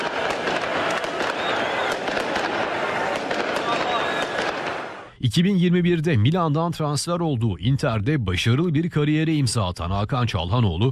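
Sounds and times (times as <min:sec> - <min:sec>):
fireworks crackling and popping: 0:00.0 - 0:05.1
large crowd cheering: 0:00.0 - 0:05.1
voices shouting: 0:00.0 - 0:05.1
speech: 0:05.2 - 0:10.8.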